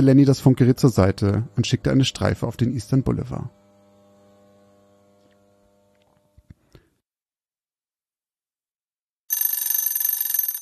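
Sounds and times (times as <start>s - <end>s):
speech: 0.0s - 3.6s
small alarm clock bell ringing: 9.3s - 10.6s.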